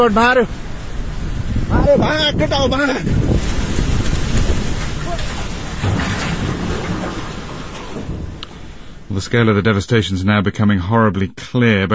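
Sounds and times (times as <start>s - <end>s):
speech: 0.0s - 0.6s, 1.7s - 3.6s, 9.1s - 11.9s
rushing flash flood water and debris: 0.0s - 9.2s.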